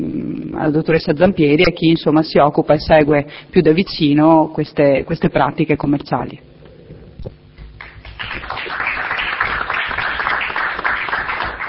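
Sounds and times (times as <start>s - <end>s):
speech: 0.6s - 6.5s
group applauding in a meeting room: 7.6s - 11.6s.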